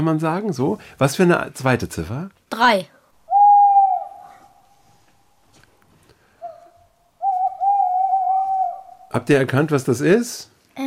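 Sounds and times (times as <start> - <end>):
speech: 0.0 - 3.0, 9.2 - 10.8
small owl hooting in quiet woodland: 3.3 - 5.4, 6.4 - 9.3.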